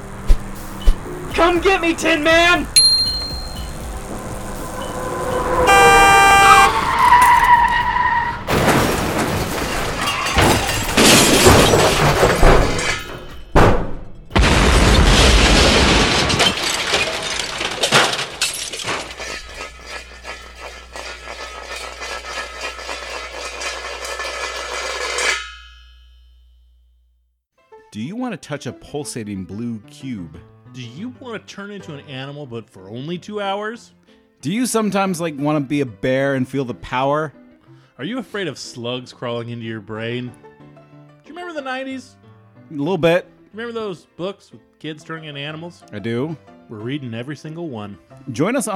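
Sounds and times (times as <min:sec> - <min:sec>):
rising motorbike engine whine: 0:00.0 - 0:07.0
speech: 0:01.4 - 0:02.8, 0:28.4 - 0:37.4, 0:38.0 - 0:40.5, 0:41.5 - 0:48.7
loud rushing traffic: 0:03.5 - 0:08.5
violent crash: 0:08.4 - 0:25.6
glass shattering: 0:08.5 - 0:26.2.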